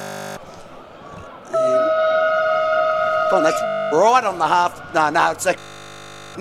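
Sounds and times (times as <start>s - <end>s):
murmuring background: 0.4s - 6.3s
passing train horn: 1.5s - 6.3s
speech: 3.3s - 5.8s.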